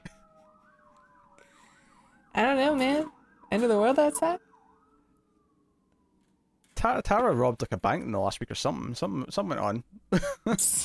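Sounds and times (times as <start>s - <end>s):
emergency siren wailing: 0.0s - 7.5s
speech: 2.5s - 4.5s, 6.8s - 10.8s.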